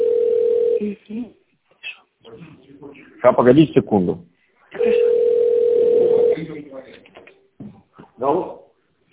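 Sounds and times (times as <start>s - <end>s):
electronic phone tone signalling a second incoming call over a telephone line: 0.0s - 0.8s, 4.8s - 6.4s
speech: 0.8s - 1.4s, 2.2s - 5.1s, 8.2s - 8.6s.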